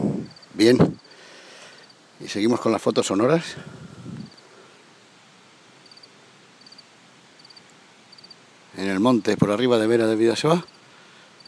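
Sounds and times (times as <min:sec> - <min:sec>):
lone cricket chirping on a mountainside above Vera de Bidasoa: 0:00.0 - 0:02.1, 0:04.1 - 0:05.1, 0:05.7 - 0:09.4, 0:10.5 - 0:11.4
steady outdoor hiss: 0:00.0 - 0:11.4
speech: 0:00.6 - 0:01.0, 0:02.2 - 0:03.8, 0:08.8 - 0:10.8.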